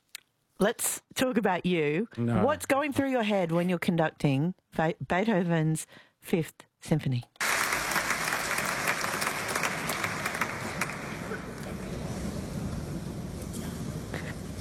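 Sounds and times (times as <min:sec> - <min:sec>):
speech: 0:00.6 - 0:07.3
large audience applause in a concert hall: 0:07.4 - 0:14.6.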